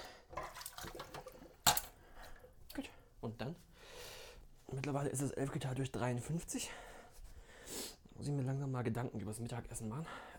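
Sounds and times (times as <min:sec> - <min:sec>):
water gurgling and splashing as it drains: 0:00.3 - 0:02.4
speech: 0:02.8 - 0:03.7, 0:04.7 - 0:07.0, 0:08.2 - 0:10.3.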